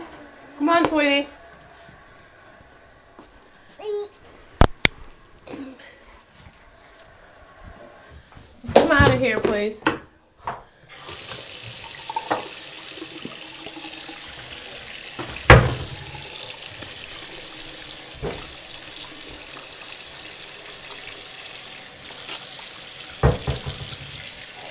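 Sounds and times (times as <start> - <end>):
speech: 0.7 - 1.4, 9.2 - 10.0
tap water running into a sink for hand washing: 10.9 - 24.7.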